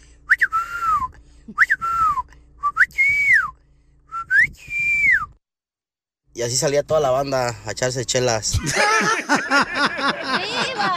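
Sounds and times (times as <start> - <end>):
person whistling a Mexican family call: 0.3 - 5.4
speech: 6.4 - 10.9
laughter: 8.5 - 10.9.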